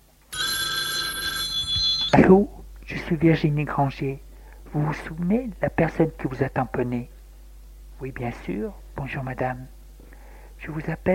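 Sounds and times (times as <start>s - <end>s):
telephone bell ringing: 0.3s - 2.2s
speech: 2.1s - 7.2s, 8.0s - 9.8s, 10.6s - 11.1s.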